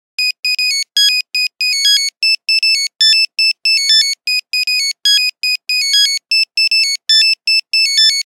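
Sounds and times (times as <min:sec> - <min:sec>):
Nokia 1100 phone ringtone melody: 0:00.2 - 0:08.3.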